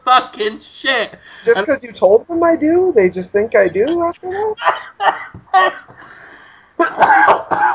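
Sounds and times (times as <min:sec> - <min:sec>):
speech: 0:00.1 - 0:06.2, 0:06.9 - 0:07.7
person coughing up a raspy coughing fit: 0:03.9 - 0:06.0, 0:06.8 - 0:07.7.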